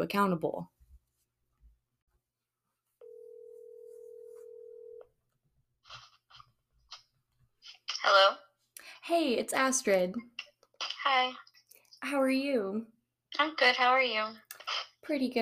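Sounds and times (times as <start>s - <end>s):
speech: 0.0s - 0.8s, 8.0s - 8.4s, 9.1s - 10.3s, 11.0s - 15.4s
telephone ringing tone of an outgoing phone call: 3.0s - 5.1s.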